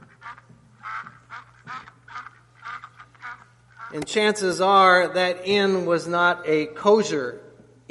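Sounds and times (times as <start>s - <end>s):
duck quacking: 0.0s - 4.1s
speech: 3.9s - 7.8s.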